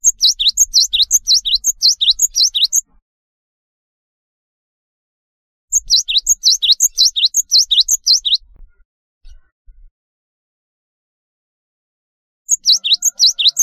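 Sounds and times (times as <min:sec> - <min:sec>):
Java sparrow singing: 0:00.0 - 0:03.0, 0:05.7 - 0:08.7, 0:12.5 - 0:13.6.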